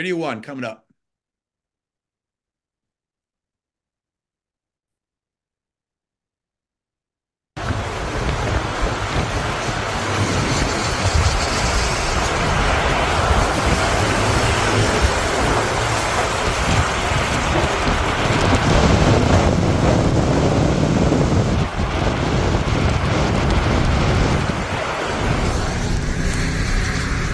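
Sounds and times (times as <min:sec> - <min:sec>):
speech: 0:00.0 - 0:00.8
tornado wind roaring: 0:07.6 - 0:27.3.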